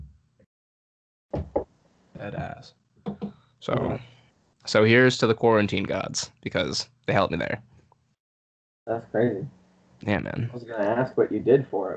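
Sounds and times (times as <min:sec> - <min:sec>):
speech: 0:02.2 - 0:02.8, 0:03.6 - 0:07.7, 0:08.9 - 0:11.9
knuckles rapping on wood: 0:03.1 - 0:03.4.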